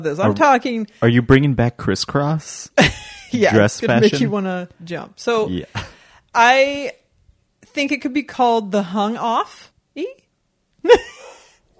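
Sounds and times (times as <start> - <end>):
speech: 0.0 - 7.0, 7.7 - 10.2, 10.8 - 11.2
dog barking: 11.1 - 11.7.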